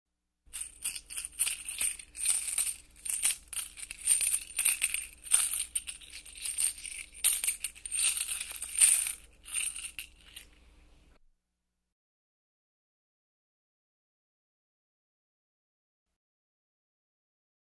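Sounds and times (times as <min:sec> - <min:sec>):
coins rattling: 0:00.5 - 0:10.6.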